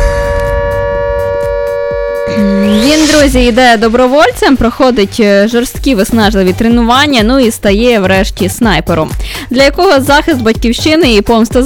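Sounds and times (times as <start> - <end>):
air raid siren wailing: 0.0 - 5.2
low rumble: 0.0 - 5.9
speech: 2.3 - 11.6.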